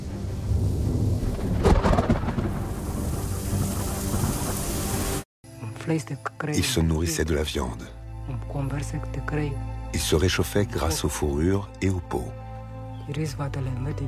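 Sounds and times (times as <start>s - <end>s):
heavy rain pouring down: 0.0s - 5.2s
thunder crack and rumble: 0.0s - 5.2s
speech: 5.9s - 12.4s, 13.1s - 14.0s.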